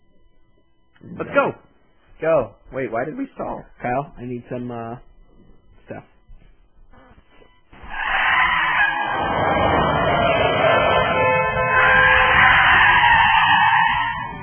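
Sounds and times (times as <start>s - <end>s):
speech: 1.1s - 1.6s, 2.2s - 5.1s, 5.9s - 6.1s
pickup truck engine roaring through a ditch onto a road: 7.9s - 14.4s
pickup truck skidding through a ditch kicking up dirt, mud and gravel: 8.0s - 14.4s.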